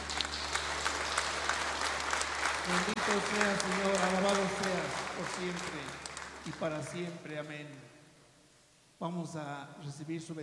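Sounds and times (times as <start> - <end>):
congregation applauding in a church during a eucharistic devotion: 0.0 - 7.4
speech: 2.7 - 7.9, 9.0 - 10.4.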